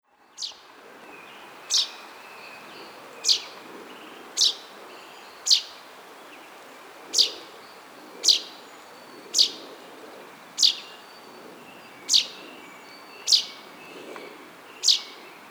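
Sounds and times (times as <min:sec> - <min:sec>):
common chaffinch Fringilla coelebs calling with crisp high single notes: 0:00.4 - 0:00.6, 0:01.6 - 0:02.0, 0:03.2 - 0:06.4, 0:07.1 - 0:08.7, 0:09.3 - 0:09.7, 0:10.5 - 0:11.1, 0:12.0 - 0:13.7, 0:14.7 - 0:15.4.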